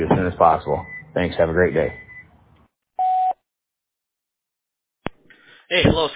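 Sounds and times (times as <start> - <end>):
speech: 0.0 - 2.0, 5.7 - 6.1
answering machine beep: 1.9 - 2.3, 3.0 - 3.4.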